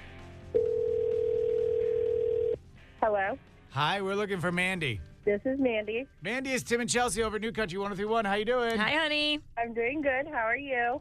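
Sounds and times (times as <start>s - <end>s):
telephone ring tone of a call to a contest winner: 0.6s - 2.6s
speech: 3.0s - 10.9s.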